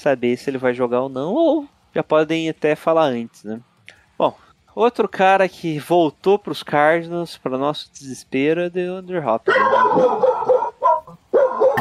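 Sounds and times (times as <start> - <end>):
speech: 0.0 - 10.4
dog barking in agitated bursts: 9.5 - 11.7.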